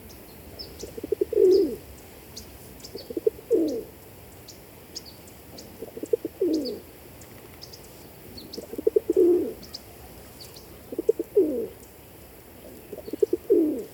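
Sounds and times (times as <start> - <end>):
feral pigeon cooing: 0.8 - 1.8, 3.0 - 3.9, 5.8 - 6.9, 8.5 - 9.8, 10.8 - 11.8, 12.6 - 13.9.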